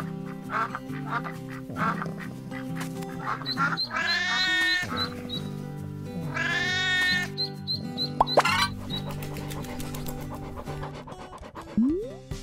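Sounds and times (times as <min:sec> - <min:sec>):
duck and ducklings quacking: 0:00.0 - 0:05.6, 0:06.2 - 0:10.8
bright bouncy instrumental tune: 0:07.5 - 0:09.0, 0:11.3 - 0:12.4.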